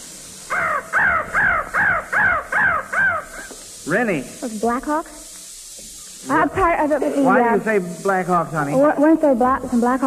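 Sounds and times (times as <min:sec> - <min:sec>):
faint hiss: 0:00.0 - 0:10.0
crow cawing sound effect: 0:00.5 - 0:03.6
speech: 0:03.9 - 0:05.2, 0:06.3 - 0:10.0.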